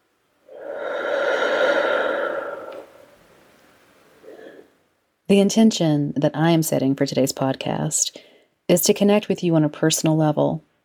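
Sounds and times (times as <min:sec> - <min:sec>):
deep breath in and out: 0:00.5 - 0:04.8
speech: 0:05.3 - 0:10.7.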